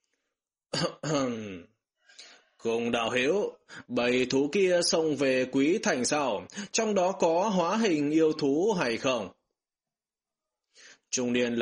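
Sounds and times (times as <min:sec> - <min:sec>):
dry cough with throat-clearing: 0:00.7 - 0:01.7
speech: 0:00.8 - 0:01.7, 0:02.6 - 0:09.4, 0:11.1 - 0:11.5.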